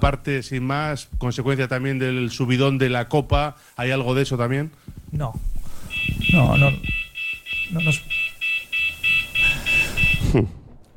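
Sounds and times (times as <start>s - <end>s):
speech: 0.0s - 5.5s, 6.1s - 7.0s, 7.7s - 8.3s, 10.3s - 10.6s
fire alarm beeping in shrill electronic pulses: 1.8s - 2.6s, 5.8s - 10.3s.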